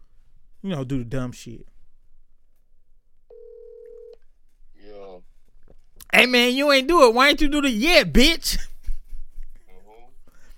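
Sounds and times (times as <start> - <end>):
speech: 0.6 - 1.7, 6.1 - 8.7
phone dialing tone beep: 3.3 - 4.2.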